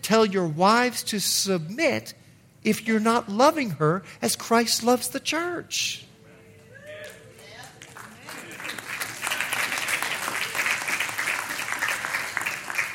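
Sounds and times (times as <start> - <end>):
speech: 0.0 - 6.1
audience clapping: 7.0 - 12.9.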